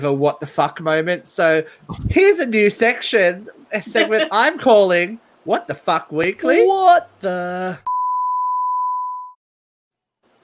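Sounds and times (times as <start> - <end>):
speech: 0.0 - 7.9
laughter: 2.6 - 4.7
steady loud pure-tone censor bleep: 7.9 - 9.4.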